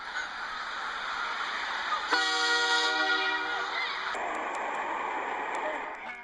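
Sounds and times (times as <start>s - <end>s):
train rumbling past: 0.0s - 6.2s
train horn blaring: 2.1s - 4.2s.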